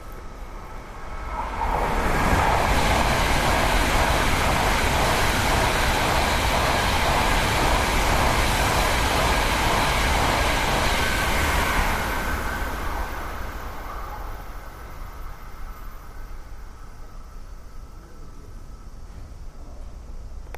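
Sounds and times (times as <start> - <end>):
train passing: 0.0 - 20.4.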